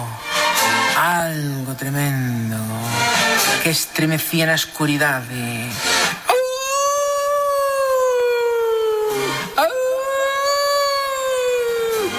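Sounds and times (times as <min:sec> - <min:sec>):
speech: 0:01.0 - 0:06.0
long mournful howls: 0:06.3 - 0:12.1.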